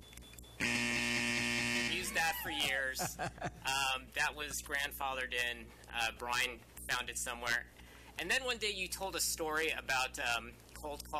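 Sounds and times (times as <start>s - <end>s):
old-school buzzer: 0.6s - 2.5s
laughter: 1.9s - 3.8s
speech: 2.3s - 11.1s.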